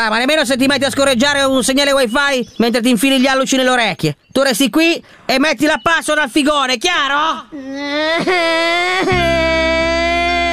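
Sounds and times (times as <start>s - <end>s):
speech: 0.0s - 9.6s
person crying and whimpering: 7.5s - 10.5s.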